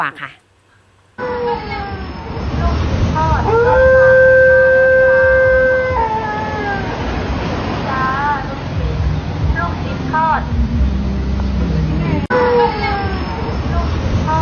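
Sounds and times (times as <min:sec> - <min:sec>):
speech: 0:00.0 - 0:00.4
street noise: 0:00.0 - 0:14.3
passing meatball vendor's vehicle rumbling: 0:00.8 - 0:14.3
fruit shop's dog howling at a passing meatball vendor's vehicle: 0:03.4 - 0:07.1.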